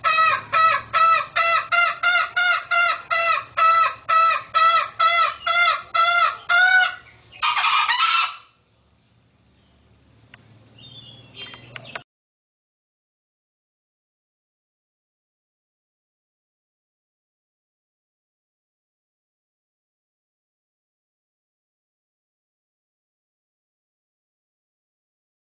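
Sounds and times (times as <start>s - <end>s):
female green junglefowl hen calling in harmonic honking notes: 0.0s - 8.6s.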